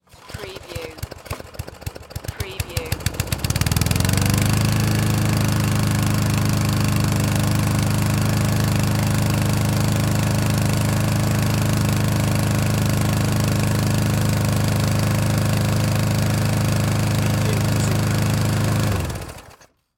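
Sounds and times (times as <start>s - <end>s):
lawn mower pull start: 0.0s - 19.9s.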